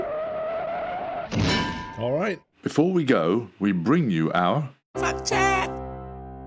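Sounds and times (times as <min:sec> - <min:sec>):
car tire screeching as a car brakes and skids: 0:00.0 - 0:01.4
speech: 0:01.3 - 0:05.8.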